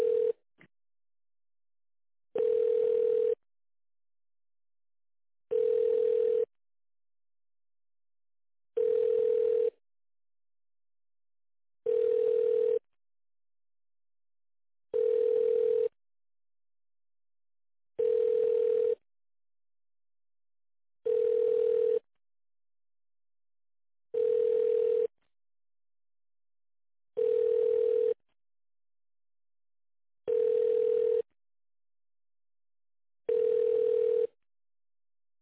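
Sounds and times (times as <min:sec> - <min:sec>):
telephone ringback tone while a call is being transferred: 0:00.0 - 0:00.4, 0:02.4 - 0:03.4, 0:05.5 - 0:06.5, 0:08.8 - 0:09.8, 0:11.9 - 0:12.8, 0:14.9 - 0:15.9, 0:18.0 - 0:19.0, 0:21.0 - 0:22.0, 0:24.2 - 0:25.1, 0:27.2 - 0:28.2, 0:30.3 - 0:31.3, 0:33.3 - 0:34.4.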